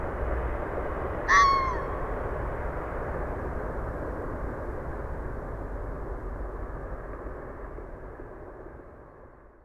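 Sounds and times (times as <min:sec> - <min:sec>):
traffic hum from cars on a parkway: 0:00.0 - 0:07.8
airplanes: 0:00.0 - 0:09.6
red fox rasping yelp in Dyke Marsh: 0:01.3 - 0:02.0.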